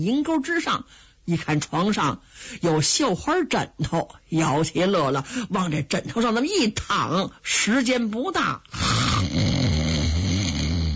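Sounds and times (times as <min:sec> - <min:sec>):
speech: 0:00.0 - 0:10.0
sleeping man snoring loudly: 0:08.8 - 0:10.9.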